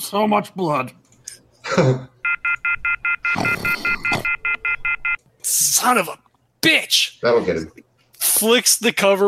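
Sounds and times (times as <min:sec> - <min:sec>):
speech: 0:00.0 - 0:01.0, 0:01.8 - 0:02.1, 0:05.5 - 0:09.2
telephone off-hook warning beeping: 0:02.2 - 0:05.2.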